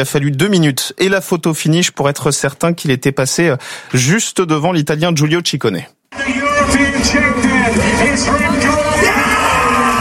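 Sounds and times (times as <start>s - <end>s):
speech: 0.0s - 9.6s
noisy crowded background: 6.1s - 9.9s
cyclist shouting and whooping with joy after winning a championship: 6.2s - 9.9s.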